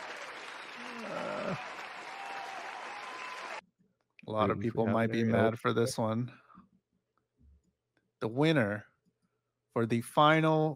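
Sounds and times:
large crowd applauding: 0.0 - 3.6
rising whistle or cheer: 0.1 - 3.6
speech: 4.3 - 6.4, 8.2 - 8.9, 9.8 - 10.7.

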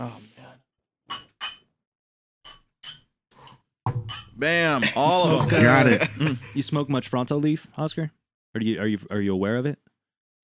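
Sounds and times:
speech: 0.0 - 0.3, 4.4 - 10.4
glasses clinking together in a toast: 1.1 - 1.6, 2.5 - 3.1, 3.9 - 4.4
laughter: 4.7 - 6.8.

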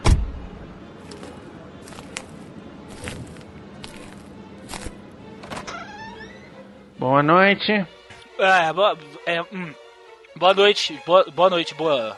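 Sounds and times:
heavy thunk: 0.0 - 0.4
footsteps walking on a hard surface toward an office: 1.0 - 5.0
speech: 7.0 - 9.8, 10.4 - 12.1.

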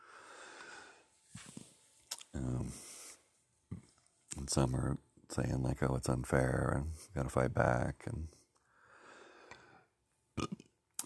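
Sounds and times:
soft breathy noise: 0.0 - 1.8, 2.4 - 3.9, 8.2 - 10.0
speech: 2.3 - 2.9, 4.5 - 8.4
low gurgly burps from one person: 10.4 - 10.7.

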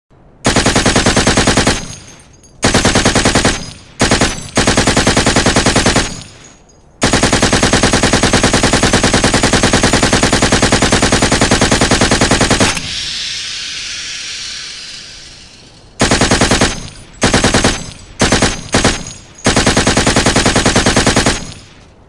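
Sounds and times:
MG5 machine gun fire: 0.4 - 13.2, 15.0 - 21.8
hissing: 10.2 - 18.3.

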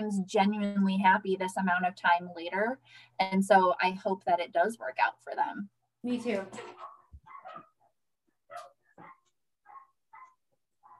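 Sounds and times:
speech: 0.0 - 6.9
dog barking: 6.7 - 7.9, 8.5 - 10.9.

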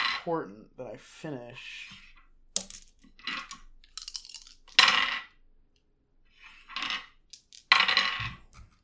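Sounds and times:
speech: 0.2 - 2.0
dice rattling and clattering across a hard surface: 1.9 - 5.4, 6.4 - 8.4.

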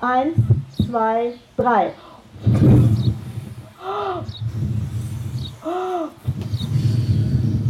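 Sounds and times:
speech: 0.0 - 3.2
large audience huffing and blowing imitating a wolf: 2.3 - 7.6.

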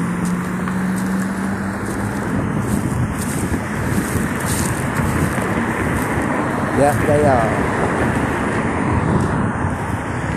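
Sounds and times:
road traffic of cars and engines rushing past: 0.0 - 10.3
speech: 6.8 - 7.7.

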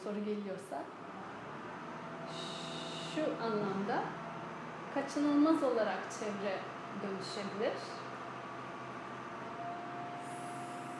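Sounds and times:
speech: 0.0 - 1.2, 3.2 - 4.2, 5.0 - 8.0
garbage truck engine rumbling: 0.9 - 10.9
garbage truck air brakes hissing: 2.1 - 3.4, 10.0 - 10.9.

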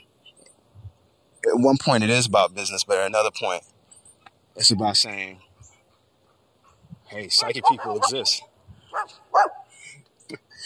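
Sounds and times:
speech: 1.6 - 3.7, 4.6 - 5.5, 7.1 - 9.6
dog barking: 7.3 - 9.7.

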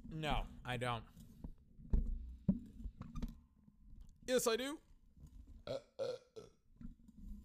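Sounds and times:
speech: 0.1 - 1.2, 4.3 - 4.8, 5.7 - 6.2
loud burp: 5.6 - 6.6.

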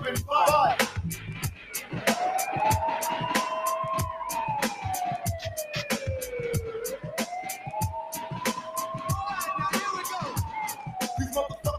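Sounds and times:
police car siren wailing: 0.5 - 11.7.

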